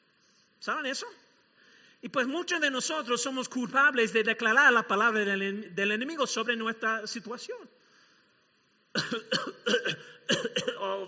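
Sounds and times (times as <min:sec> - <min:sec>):
speech: 0:00.6 - 0:01.3, 0:02.0 - 0:07.8, 0:09.0 - 0:11.0
person coughing harshly: 0:09.0 - 0:10.9.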